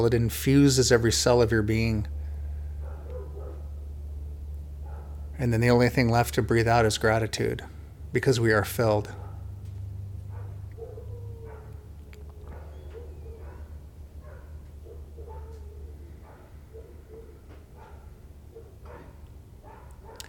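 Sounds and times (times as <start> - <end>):
speech: 0.0 - 2.2, 5.4 - 9.2
steady low hum: 0.0 - 20.2
dogs barking: 2.3 - 3.9, 4.7 - 5.4, 9.0 - 20.2.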